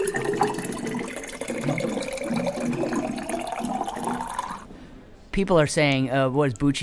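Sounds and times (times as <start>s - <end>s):
water cooler gurgling and bubbling: 0.0s - 4.7s
speech: 5.4s - 6.8s.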